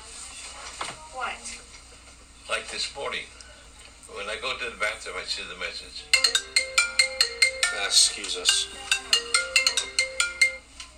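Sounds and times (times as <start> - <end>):
speech: 2.8 - 3.4, 4.1 - 6.7, 7.8 - 9.0
phone ringtone with a bright chiming melody: 6.2 - 10.7.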